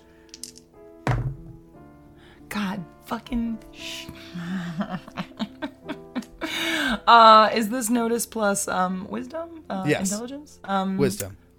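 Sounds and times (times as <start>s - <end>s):
dice landing hard on a table in a tabletop game: 0.3s - 1.5s
speech: 2.5s - 5.3s, 7.1s - 11.4s.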